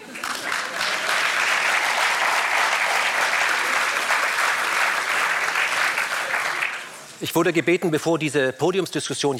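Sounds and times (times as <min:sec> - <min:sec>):
large audience applause: 0:00.0 - 0:07.1
speech: 0:07.2 - 0:09.3.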